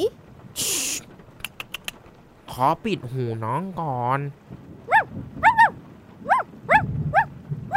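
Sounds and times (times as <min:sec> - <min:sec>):
low rumbling background: 0:00.0 - 0:07.7
speech: 0:02.6 - 0:05.4
puppy yapping with high-pitched barks: 0:04.9 - 0:07.7.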